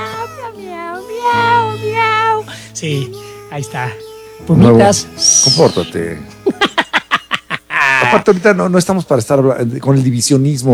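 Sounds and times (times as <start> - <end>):
person imitating a cat meow with their voice: 0.0 - 2.5, 7.8 - 8.3
speech: 2.8 - 6.6, 8.1 - 10.7
laughter: 6.4 - 8.5.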